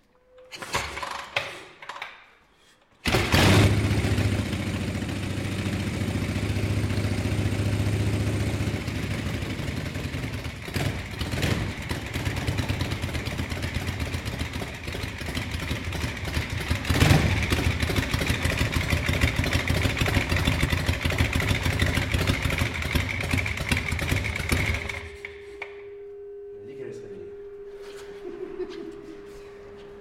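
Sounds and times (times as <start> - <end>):
motorcycle being kick-started, sputtering and coughing: 3.0 - 25.4
laughter: 28.0 - 29.6.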